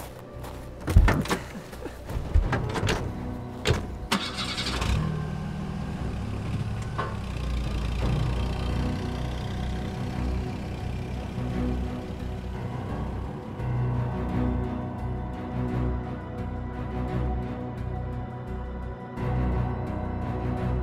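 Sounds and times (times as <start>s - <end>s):
generator engine hum: 0.0s - 20.8s
generator clunks and knocks while starting: 0.8s - 4.1s, 6.6s - 7.5s.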